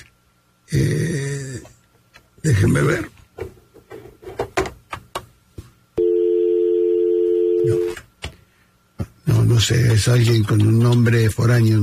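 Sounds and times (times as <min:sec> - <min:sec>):
speech: 0:00.7 - 0:01.3, 0:02.4 - 0:03.1, 0:09.7 - 0:11.8
telephone ringing with one electronic tone for an incoming call: 0:06.0 - 0:08.0.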